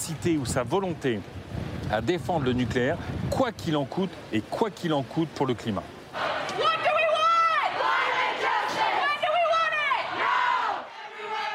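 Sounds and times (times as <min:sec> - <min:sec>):
speech: 0:00.1 - 0:06.3
crowd of protesters chanting in unison in conference corridors: 0:06.1 - 0:11.5.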